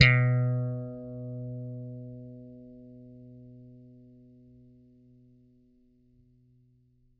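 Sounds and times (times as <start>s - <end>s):
plucked bass note B2: 0.0s - 2.4s.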